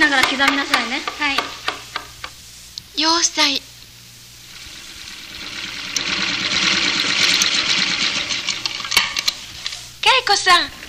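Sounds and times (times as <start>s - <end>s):
speech: 0.0s - 1.4s, 3.0s - 3.7s, 10.3s - 10.8s
sewing machine stitching a seam: 4.5s - 9.0s.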